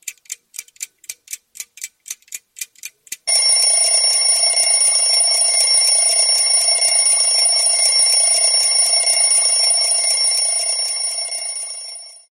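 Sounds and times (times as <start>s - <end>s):
alarm clock ringtone: 3.3s - 12.3s.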